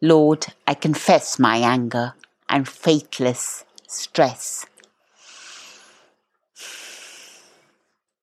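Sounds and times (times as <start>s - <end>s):
speech: 0.0s - 4.7s
slow exhaling breath: 5.1s - 7.9s.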